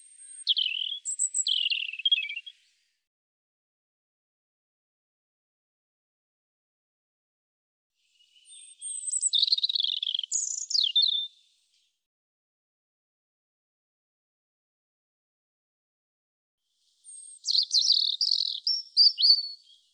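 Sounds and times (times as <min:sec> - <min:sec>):
European robin singing: 0:00.0 - 0:02.7, 0:08.1 - 0:11.8, 0:16.9 - 0:19.9.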